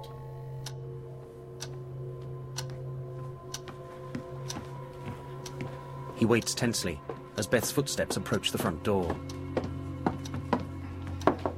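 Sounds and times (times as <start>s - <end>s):
clock ticking: 0.6s - 0.8s, 1.6s - 1.8s, 3.5s - 11.4s
speech: 6.2s - 9.4s.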